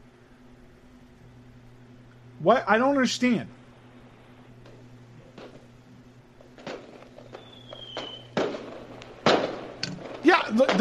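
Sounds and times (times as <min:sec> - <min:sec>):
speech: 0:02.4 - 0:03.6
fireworks crackling and popping indoors: 0:05.3 - 0:05.7, 0:06.4 - 0:10.7
thin rising whistling tone of fireworks: 0:07.2 - 0:08.4.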